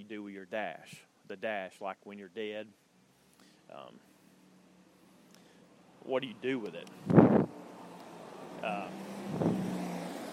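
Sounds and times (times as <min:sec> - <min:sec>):
speech: 0:00.0 - 0:02.9, 0:03.7 - 0:04.1, 0:06.0 - 0:07.7, 0:08.6 - 0:09.6
truck engine rumbling past outside: 0:07.0 - 0:10.3.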